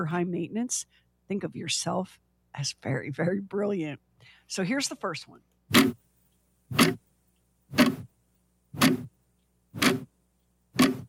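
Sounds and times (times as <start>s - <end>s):
speech: 0.0s - 6.0s
clock ticking in an empty room: 5.7s - 8.1s, 8.7s - 11.0s.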